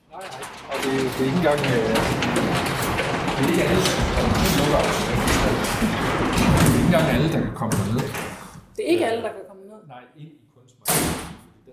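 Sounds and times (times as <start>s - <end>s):
large freight elevator grinding downward underground: 0.0s - 8.4s
speech: 0.9s - 2.5s, 3.4s - 10.4s.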